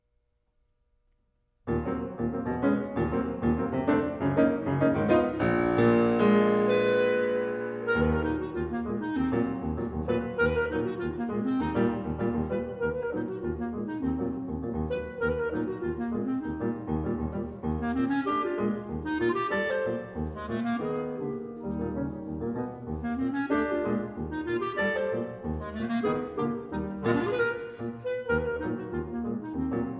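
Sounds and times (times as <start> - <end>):
piano piece, andante ben ritmato e deciso: 1.7 - 29.9.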